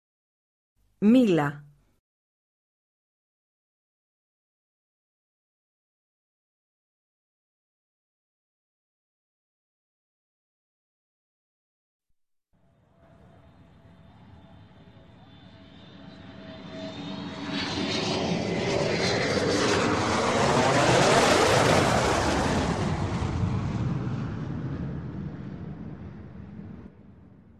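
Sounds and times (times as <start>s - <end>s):
speech: 1.0s - 1.6s
airplane engine roaring as the aircraft passes overhead: 13.0s - 27.0s.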